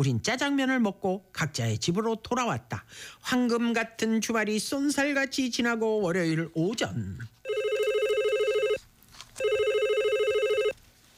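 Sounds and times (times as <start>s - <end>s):
speech: 0.0s - 7.4s
telephone ringing with trilling electronic tone: 7.4s - 10.8s.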